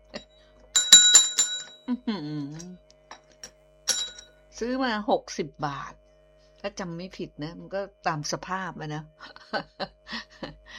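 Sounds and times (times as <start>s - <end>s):
small bell jingling: 0.8s - 1.8s, 3.9s - 4.2s
speech: 1.9s - 2.8s, 4.6s - 6.0s, 6.6s - 10.6s.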